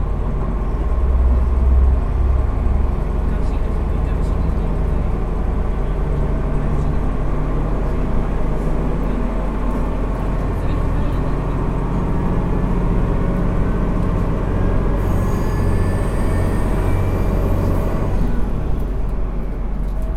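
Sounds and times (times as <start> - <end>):
diesel railcar engine drone: 0.0 - 20.1
diesel railcar wheels rumbling: 0.0 - 20.1
thin high squeal: 15.0 - 18.0.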